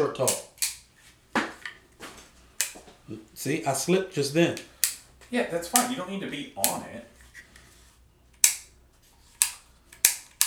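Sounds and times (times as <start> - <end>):
speech: 0.1 - 0.5, 3.1 - 4.7, 5.3 - 7.1
sharp metallic clicks of a rifle lower receiver mechanism being handled: 0.2 - 0.9, 4.6 - 5.1, 5.7 - 6.0, 6.6 - 6.9, 8.4 - 8.8, 9.4 - 10.4.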